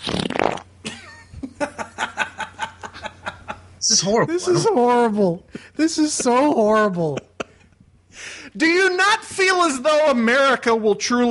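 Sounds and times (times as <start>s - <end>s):
person farting: 0.0s - 0.8s
laughter: 0.9s - 5.1s
speech: 3.9s - 7.2s, 8.6s - 11.2s.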